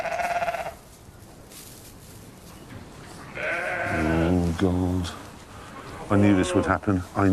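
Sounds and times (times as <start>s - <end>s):
sheep bleating during labor: 0.0s - 0.8s, 3.3s - 4.4s, 5.8s - 6.8s
speech: 4.6s - 5.3s, 6.1s - 7.3s.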